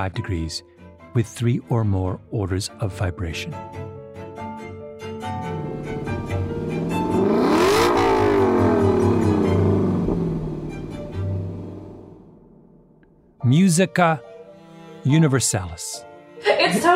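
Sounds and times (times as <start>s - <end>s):
speech: 0.0s - 3.9s, 13.4s - 14.3s, 15.0s - 16.9s
LC sports car engine revving in harmonic intervals: 5.3s - 13.0s.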